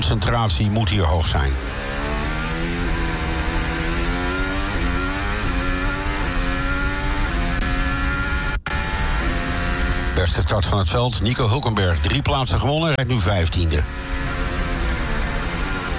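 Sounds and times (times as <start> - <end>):
speech: 0.1 - 2.0, 10.2 - 14.4
Formula 1 car engine high-revving whine onboard on the Baku street circuit: 1.3 - 10.2, 13.7 - 15.9.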